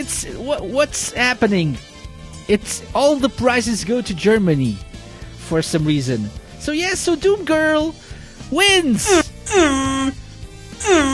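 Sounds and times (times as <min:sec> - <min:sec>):
speech: 0:00.0 - 0:01.9, 0:02.5 - 0:04.9, 0:05.5 - 0:10.2
air horn blasts: 0:09.1 - 0:10.2, 0:10.8 - 0:11.1.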